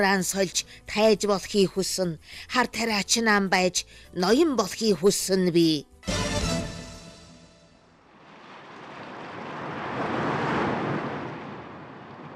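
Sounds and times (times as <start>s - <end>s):
speech: 0.0s - 6.3s
rough sea waves surging: 8.0s - 12.3s.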